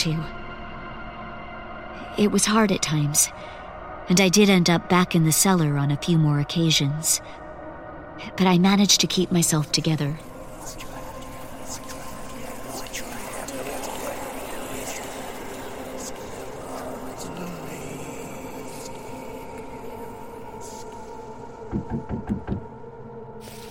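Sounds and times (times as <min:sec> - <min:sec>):
speech: 0:00.0 - 0:00.4, 0:02.2 - 0:03.5, 0:04.1 - 0:07.4, 0:08.2 - 0:10.8
firm knocking on a door: 0:21.7 - 0:22.7.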